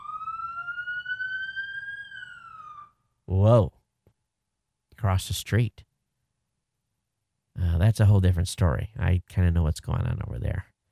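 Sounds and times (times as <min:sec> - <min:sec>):
emergency vehicle siren wailing as it passes: 0:00.0 - 0:03.0
speech: 0:03.3 - 0:03.8, 0:05.0 - 0:05.9, 0:07.8 - 0:10.7.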